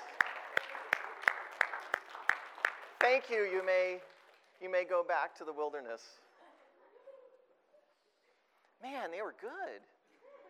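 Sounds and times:
clapping: 0.0 - 4.7
speech: 3.0 - 6.2, 8.8 - 9.9.

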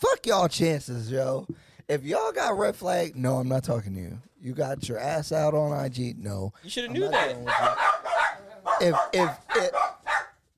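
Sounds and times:
speech: 0.2 - 7.9, 8.8 - 9.9
dogs barking: 7.0 - 10.4.

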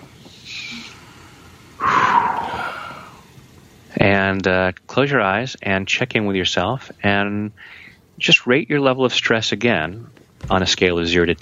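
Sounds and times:
deep breath in and out during a stress-relief tapping exercise: 0.4 - 3.3, 7.6 - 8.0
speech: 4.1 - 11.4.

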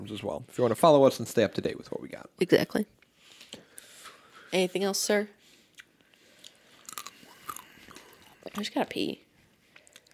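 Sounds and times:
speech: 0.0 - 3.6, 4.5 - 5.4, 8.5 - 9.2
person chewing pumpkin seeds: 5.7 - 9.0, 9.6 - 10.1.

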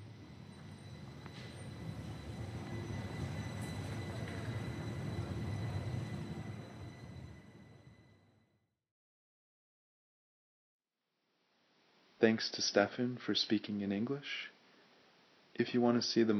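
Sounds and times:
tram rumbling past: 0.0 - 8.4
high metallic whine from tram wheels: 0.0 - 8.5
speech: 12.2 - 14.5, 15.6 - 16.3.

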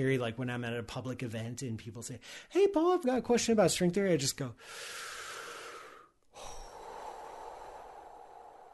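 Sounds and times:
speech: 0.0 - 5.2
long deep breath drawn in and let out: 4.6 - 8.7.

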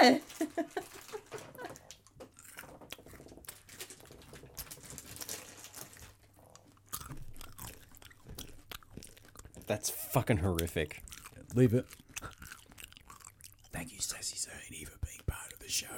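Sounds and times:
speech: 0.0 - 0.6, 9.7 - 12.0
chewing M&Ms candy close to the mic: 0.3 - 15.9.

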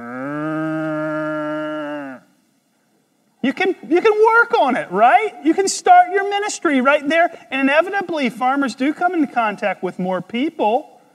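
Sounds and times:
cow mooing: 0.0 - 2.3
speech: 3.4 - 10.9.

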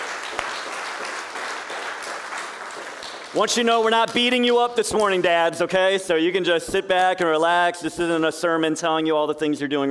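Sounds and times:
church congregation applauding: 0.0 - 4.4
speech: 3.3 - 9.9.

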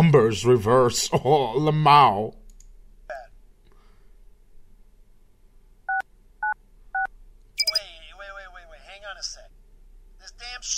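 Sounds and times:
speech: 0.1 - 2.4
keypad beeps as a code is punched in a video game: 5.9 - 7.8
high electronic chirp: 7.6 - 7.9.

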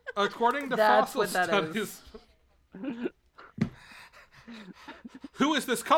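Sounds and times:
speech: 0.2 - 2.2, 5.4 - 5.9
heavy raspy breathing into a microphone: 2.9 - 5.4.

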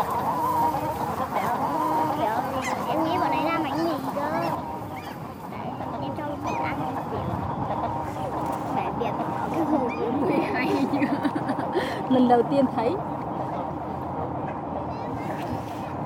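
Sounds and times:
crowd of ducks honking and quacking while being fed: 0.0 - 16.0
laughter: 9.2 - 13.0
speech: 12.2 - 13.1.

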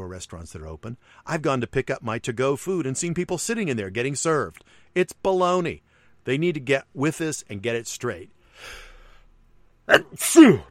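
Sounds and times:
speech: 0.1 - 8.8, 9.9 - 10.6
person sneezing: 9.9 - 10.6.

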